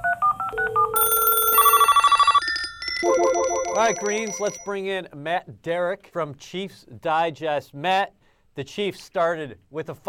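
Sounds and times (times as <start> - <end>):
electronic dialing beeps: 0.0 - 4.7
telephone ringing in rapid warbling pulses: 0.0 - 4.8
speech: 3.8 - 10.0.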